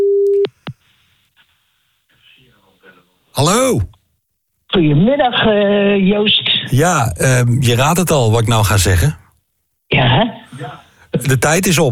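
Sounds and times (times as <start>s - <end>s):
telephone line beep while placing a call: 0.0s - 0.5s
speech: 3.4s - 4.0s, 4.8s - 9.2s, 10.0s - 11.9s.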